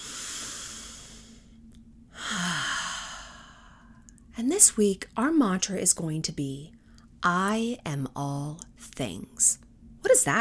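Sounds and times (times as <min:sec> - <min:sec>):
slow relaxation breath in through the nose and out through the mouth: 0:00.0 - 0:04.1
speech: 0:04.4 - 0:10.4.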